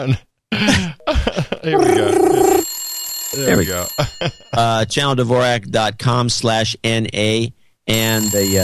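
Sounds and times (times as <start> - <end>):
speech: 0.0 - 2.2, 3.4 - 8.6
electronic telephone ringing tone: 1.8 - 4.7, 7.9 - 8.6.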